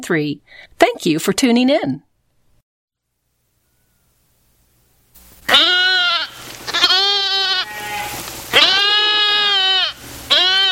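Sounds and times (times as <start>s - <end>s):
speech: 0.0s - 2.1s
goats and sheep bleating while grazing: 5.5s - 10.7s.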